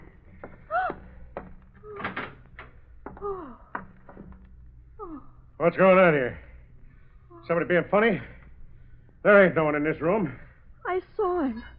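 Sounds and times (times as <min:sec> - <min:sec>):
room door creaking open with squealing hinges: 0:00.4 - 0:04.8
speech: 0:05.6 - 0:06.4, 0:07.5 - 0:08.4, 0:09.2 - 0:11.7.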